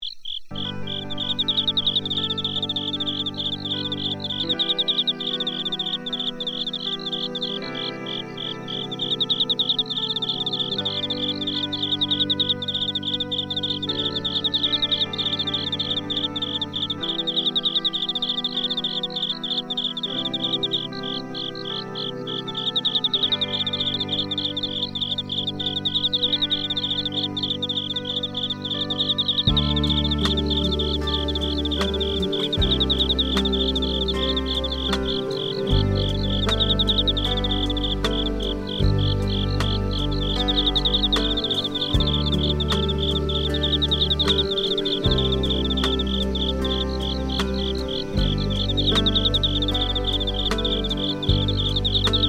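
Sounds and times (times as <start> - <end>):
insects: 0.0 - 52.2
smooth guitar: 0.5 - 52.2.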